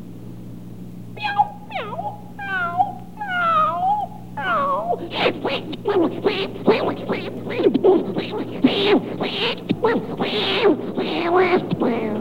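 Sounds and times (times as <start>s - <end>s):
cats yowling and meowing: 1.2s - 5.4s
cats fighting with screeches and hisses: 1.2s - 12.1s.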